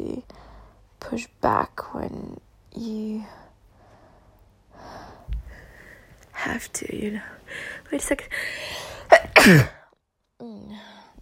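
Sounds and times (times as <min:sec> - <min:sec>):
speech: 0:01.0 - 0:03.4, 0:06.4 - 0:09.8, 0:10.4 - 0:11.0
sneeze: 0:09.1 - 0:09.8.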